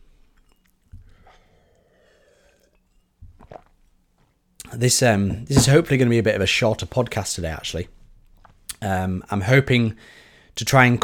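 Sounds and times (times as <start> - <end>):
person sipping a drink: 0.0 - 4.4
speech: 4.8 - 8.0, 8.8 - 11.0.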